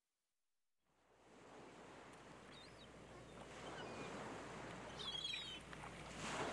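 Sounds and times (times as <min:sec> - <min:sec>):
sea waves breaking on a beach in the morning: 0:01.0 - 0:06.5.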